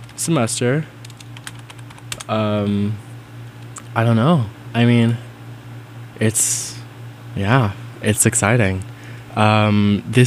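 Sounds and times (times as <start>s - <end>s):
speech: 0.2s - 1.0s, 2.3s - 3.0s, 3.9s - 5.3s, 6.2s - 6.8s, 7.4s - 10.2s
quick light typing on a computer keyboard: 1.0s - 2.3s.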